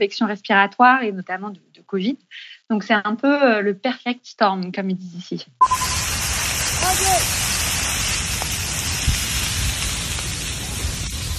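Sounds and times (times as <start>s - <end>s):
speech: 0.0s - 5.8s
wildfire crackling and popping in vegetation: 5.6s - 11.3s
wildfire roaring through vegetation: 5.7s - 11.3s.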